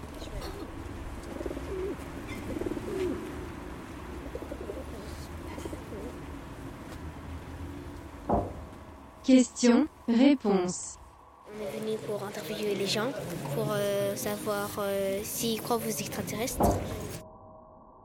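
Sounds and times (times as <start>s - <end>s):
steady outdoor hum: 0.0s - 17.3s
pigeons cooing: 0.1s - 6.3s
speech: 9.3s - 11.0s, 11.9s - 17.1s.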